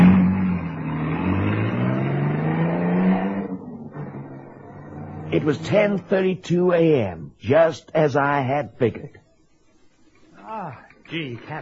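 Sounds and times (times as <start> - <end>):
car engine roaring as it accelerates away: 0.0 - 6.4
speech: 5.3 - 9.2, 10.5 - 11.6.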